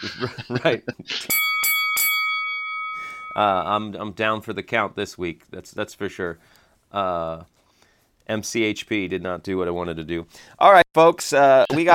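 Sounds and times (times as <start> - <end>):
laughter: 0.0 - 1.3
speech: 0.0 - 1.5, 3.4 - 7.6, 8.3 - 11.9
bright bell struck to mark a big win on a bet: 1.3 - 3.6.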